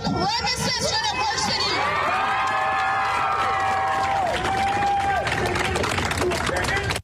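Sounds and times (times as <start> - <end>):
excited voices: 0.1 - 5.8
large crowd cheering and whooping: 0.9 - 7.0
scattered clapping: 1.9 - 7.0.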